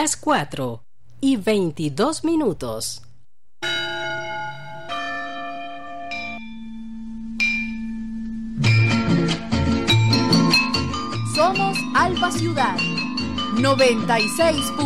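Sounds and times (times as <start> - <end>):
speech: 0.0 - 3.7, 12.0 - 14.8
church bells ringing: 3.6 - 9.1, 9.9 - 14.8.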